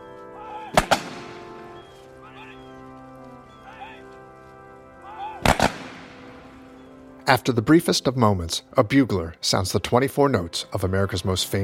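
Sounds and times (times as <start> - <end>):
rifle volleys fired by military honor guard: 0.8 - 1.4, 5.4 - 6.2
speech: 7.3 - 11.6.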